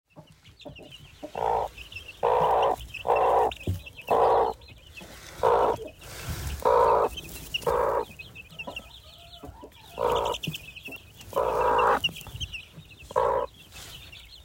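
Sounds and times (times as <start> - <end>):
broody hen growling: 0.8 - 10.6, 11.2 - 12.2, 13.1 - 13.6.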